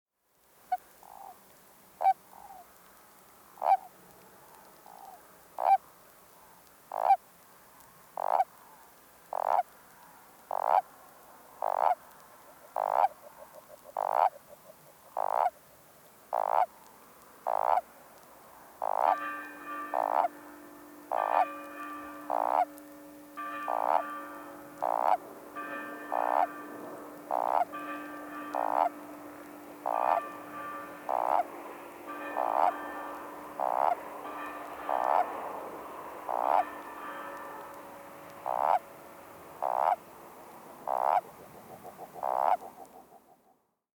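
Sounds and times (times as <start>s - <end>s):
spiny toad Bufo spinosus: 3.6s - 3.9s, 4.8s - 5.8s, 6.9s - 7.2s, 8.2s - 9.8s, 10.5s - 10.9s, 11.6s - 15.6s, 16.3s - 17.9s, 18.8s - 19.2s, 19.9s - 20.3s, 21.1s - 21.4s, 22.3s - 22.7s, 23.7s - 24.0s, 24.8s - 25.2s, 26.1s - 26.6s, 27.2s - 27.7s, 28.5s - 29.0s, 29.8s - 30.3s, 31.1s - 31.5s, 32.4s - 32.8s, 33.6s - 34.0s, 34.9s - 35.4s, 36.3s - 36.7s, 38.4s - 38.8s, 39.6s - 40.0s, 40.8s - 43.6s.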